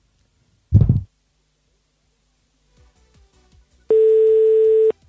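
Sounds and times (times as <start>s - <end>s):
brief thump: 0.7s - 1.1s
steady telephone tone: 3.9s - 5.0s.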